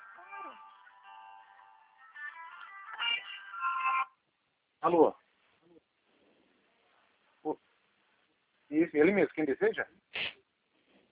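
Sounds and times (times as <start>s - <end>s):
electronic phone ringtone melody signalling a second incoming call: 0.0s - 4.1s
speech: 4.8s - 5.2s, 8.9s - 10.3s.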